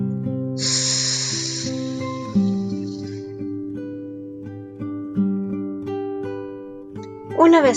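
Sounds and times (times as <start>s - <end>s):
gentle sustained instrumental music: 0.0s - 7.7s
speech: 0.6s - 0.8s, 7.4s - 7.7s
strong breathy gust of air blown out inflating a balloon: 0.6s - 3.3s.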